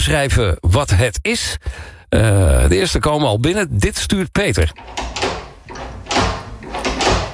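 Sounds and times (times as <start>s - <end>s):
speech: 0.0s - 5.1s
new toilet door handles and latch clacking and rattling: 4.7s - 7.3s.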